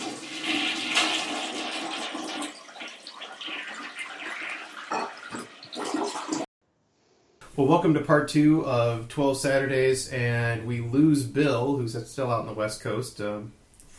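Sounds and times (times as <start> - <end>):
toilet flushing: 0.0 - 6.5
speech: 7.6 - 13.6.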